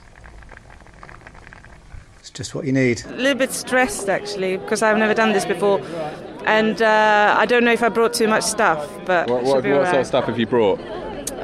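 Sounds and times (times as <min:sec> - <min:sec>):
big pot of pasta bubbling and simmering: 0:00.0 - 0:03.0
speech: 0:02.2 - 0:11.4.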